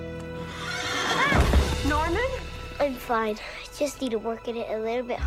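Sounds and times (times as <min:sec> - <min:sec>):
horse whinnying at a neighbour's property: 0:00.5 - 0:01.5
speech: 0:02.9 - 0:05.2.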